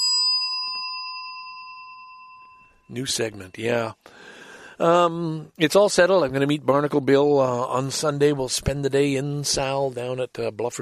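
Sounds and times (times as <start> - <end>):
bell struck to mark a new segment: 0.0 - 3.6
speech: 2.9 - 10.7.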